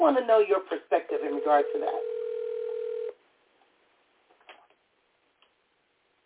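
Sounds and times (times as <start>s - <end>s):
speech: 0.0s - 2.1s
telephone line tone: 1.1s - 3.2s.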